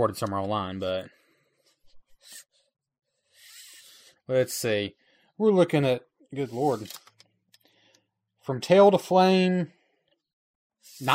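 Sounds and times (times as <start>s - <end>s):
speech: 0.0s - 1.2s, 4.3s - 7.0s, 8.5s - 9.8s, 10.9s - 11.1s
metal tape measure being pulled out: 6.5s - 7.1s, 10.9s - 11.1s.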